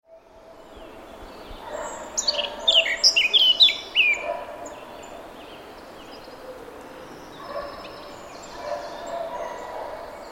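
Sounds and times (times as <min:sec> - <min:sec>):
Eurasian blackcap Sylvia atricapilla song burst of whistled notes: 0:02.2 - 0:04.2.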